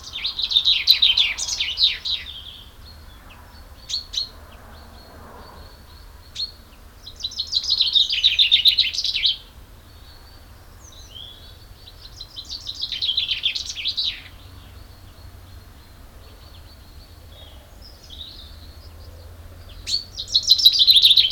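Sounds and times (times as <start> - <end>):
common chaffinch (Fringilla coelebs) singing rattling phrases of quick high notes: 0.0 - 21.3.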